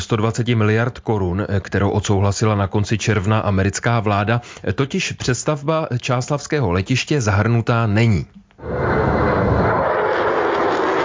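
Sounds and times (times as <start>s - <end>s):
speech: 0.1s - 9.2s
F-35 fighter jet roaring overhead in a flyover: 8.6s - 11.0s.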